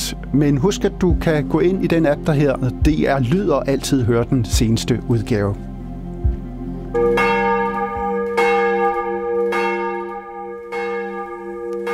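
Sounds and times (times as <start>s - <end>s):
speech: 0.4s - 5.7s
church bells in Copenhagen ringing for morning service: 6.9s - 11.9s.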